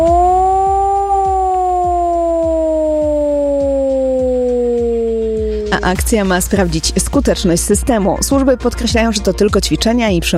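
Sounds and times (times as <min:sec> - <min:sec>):
civil defense siren wailing: 0:00.0 - 0:06.8
faint regular ticking pulse: 0:00.0 - 0:07.0
speech: 0:05.8 - 0:10.3.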